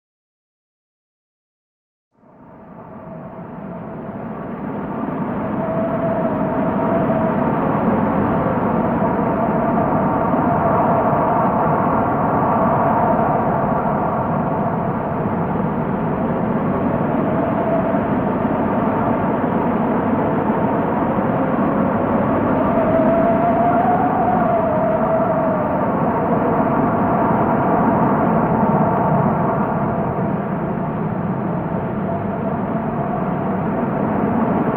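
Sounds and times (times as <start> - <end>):
overdriven wind: 2.2 - 34.7.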